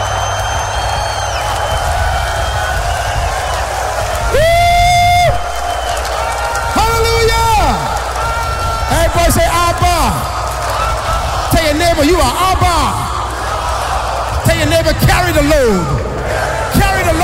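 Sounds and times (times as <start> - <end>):
large church audience screaming and cheering during a sermon: 0.0 - 17.2
speech: 11.8 - 13.0, 14.5 - 16.0.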